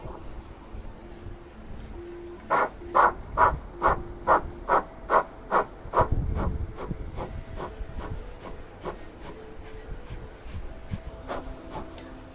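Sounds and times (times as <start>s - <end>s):
faint sustained tone humming: 0.0s - 5.8s, 6.6s - 12.3s
rapid forceful nasal exhales of yoga breath of fire: 2.5s - 9.8s.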